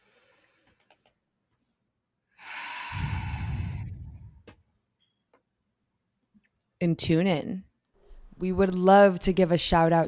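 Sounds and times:
slow deep breath: 2.4s - 4.5s
speech: 6.8s - 7.7s, 8.4s - 10.0s.

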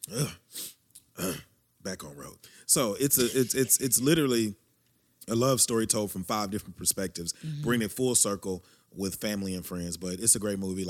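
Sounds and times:
person sneezing: 0.0s - 1.5s, 3.1s - 3.8s
sharp exhale or sniff: 0.5s - 0.8s
speech: 2.8s - 4.6s, 5.3s - 10.8s.

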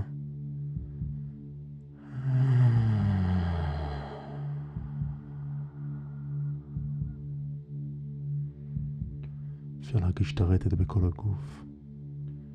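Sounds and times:
low steady hummed vocal tone during a breathing exercise: 0.0s - 12.5s
breathy rush of exhaled air: 2.0s - 6.4s
deep breath taken during a breathing exercise: 2.0s - 6.8s, 8.5s - 9.8s
speech: 9.9s - 11.7s.

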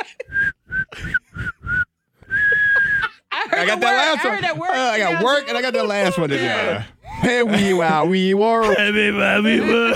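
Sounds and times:
laughter: 0.0s - 0.4s, 2.5s - 9.9s
person whistling a tune: 0.2s - 3.2s
speech: 3.6s - 9.9s.

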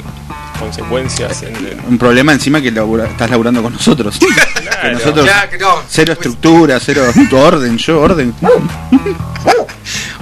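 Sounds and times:
speech: 0.6s - 10.2s
laughter: 4.2s - 5.5s, 6.8s - 7.8s, 8.6s - 9.8s
dog barking sharply: 8.4s - 8.8s, 9.4s - 10.2s.

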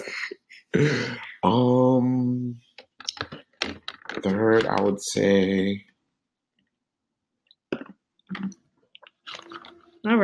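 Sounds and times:
speech: 0.8s - 2.4s, 4.5s - 5.9s, 10.0s - 10.2s
person drinking water with wet gulps and swallowing: 7.7s - 9.8s.

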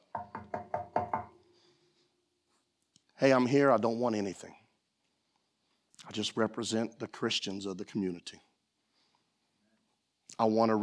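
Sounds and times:
firm knocking on a door: 0.1s - 1.4s
speech: 3.2s - 4.6s, 6.0s - 8.5s, 10.4s - 10.8s.

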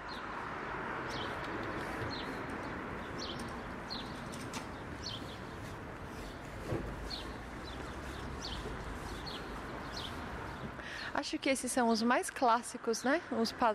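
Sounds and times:
sparrows chirping outside a window: 0.0s - 12.1s
steady outdoor noise: 0.0s - 13.7s
speech: 11.3s - 13.7s.

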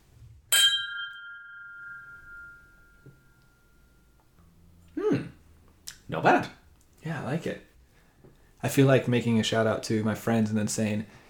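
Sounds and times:
glasses clinking in a toast: 0.5s - 4.2s
short vocal sound: 4.9s - 6.0s
speech: 6.1s - 6.6s, 7.3s - 7.7s, 8.6s - 11.2s.

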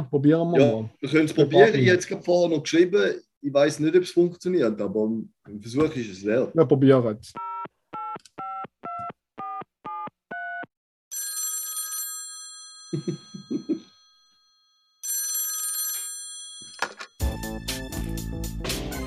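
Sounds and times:
speech: 0.0s - 7.5s
telephone dialing tones: 7.4s - 10.7s
bright ringing phone bell: 11.1s - 17.2s
person laughing: 12.9s - 13.9s.

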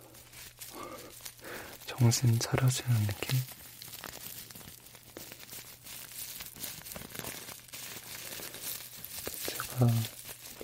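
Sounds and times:
tea bag packet crinkling: 0.0s - 10.6s
speech: 2.0s - 3.6s, 9.8s - 10.2s.

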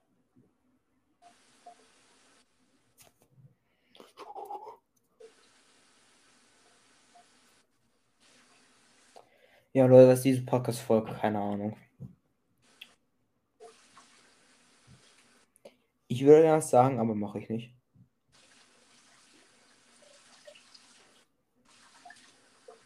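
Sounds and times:
speech: 9.8s - 12.1s, 16.2s - 17.8s
water running from a tap: 18.4s - 22.8s.

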